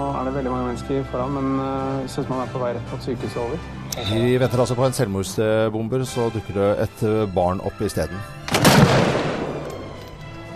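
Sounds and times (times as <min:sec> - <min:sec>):
speech: 0:00.4 - 0:08.5
gunshot in a town square: 0:08.5 - 0:09.9.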